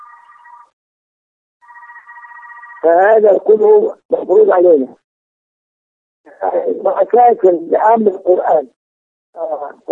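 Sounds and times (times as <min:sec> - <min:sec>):
telephone ringing in electronic bursts: 0:00.0 - 0:00.8, 0:01.6 - 0:03.3
speech: 0:02.8 - 0:05.0, 0:06.4 - 0:09.9.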